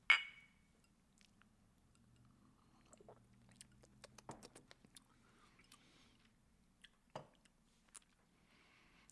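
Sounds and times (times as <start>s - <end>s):
glasses of smoky moonshine drinks clinking in a toast: 0.1s - 0.6s
sipping and gulping: 2.0s - 5.8s.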